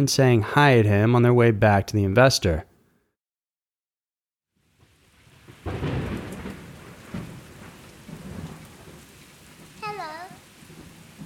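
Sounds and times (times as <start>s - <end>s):
speech: 0.0s - 2.7s
heavy rain pouring: 4.6s - 11.2s
deep thunder rumbling: 5.3s - 11.2s.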